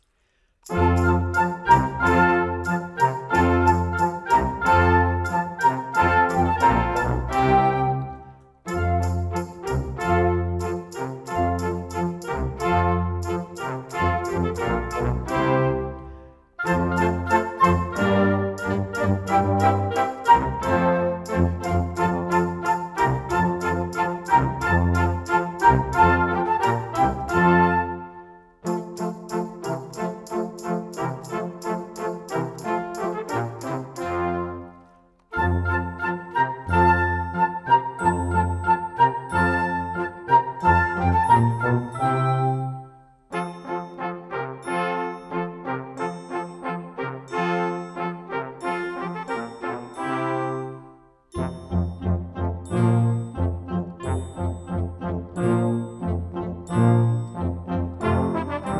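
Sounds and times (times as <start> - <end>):
classical music without click track: 0.0 - 58.7.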